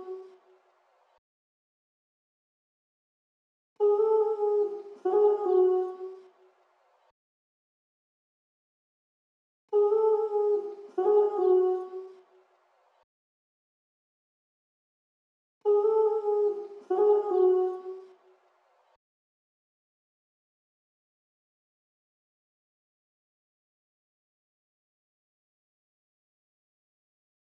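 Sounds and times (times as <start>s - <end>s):
vocal melody loop in C sharp minor: 3.8s - 6.2s, 9.8s - 12.1s, 15.7s - 18.0s.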